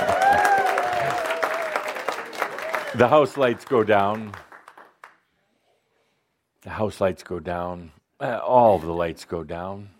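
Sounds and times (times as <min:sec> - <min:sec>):
theatre audience applauding as the curtain rises: 0:00.0 - 0:05.2
speech: 0:03.0 - 0:04.4, 0:06.6 - 0:09.9.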